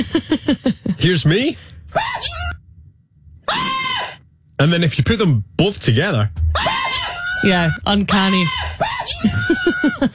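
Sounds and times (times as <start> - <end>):
speech: 0.0 - 1.7, 4.6 - 6.5, 7.4 - 10.1
loud harmonically rich human scream with wavering pitch: 3.5 - 4.2, 6.6 - 7.7, 8.3 - 9.6.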